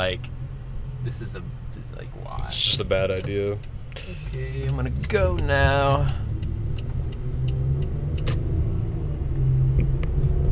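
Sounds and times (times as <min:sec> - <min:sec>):
speech: 0:00.0 - 0:00.4, 0:01.0 - 0:06.3
car engine labouring climbing a hill: 0:00.0 - 0:10.5
faint ticking clicks: 0:02.3 - 0:08.4.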